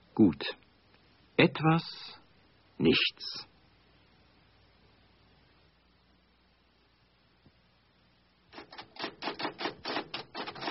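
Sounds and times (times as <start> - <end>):
speech: 0.2 - 0.6, 1.4 - 2.2, 2.8 - 3.5
pen scratching while writing: 8.6 - 10.6.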